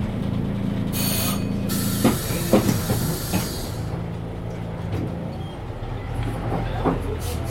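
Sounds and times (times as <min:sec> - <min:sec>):
Ikarus 66 city bus engine rumbling while driving in Rostock: 0:00.0 - 0:07.4
faint clunks and rattles of Ikarus 66 city bus: 0:02.0 - 0:05.6, 0:06.2 - 0:07.4.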